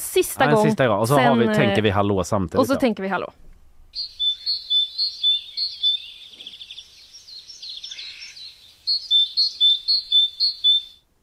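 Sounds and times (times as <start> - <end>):
speech: 0.1 - 3.4
great tit chatter: 3.9 - 11.0
great tit singing: 3.9 - 11.0.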